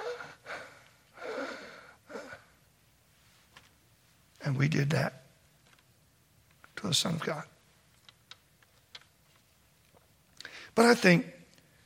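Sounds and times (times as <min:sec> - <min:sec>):
voice imitating labored gasping breaths of a crucified person: 0:00.0 - 0:02.6
speech: 0:04.5 - 0:05.2, 0:06.8 - 0:07.5, 0:10.8 - 0:11.4.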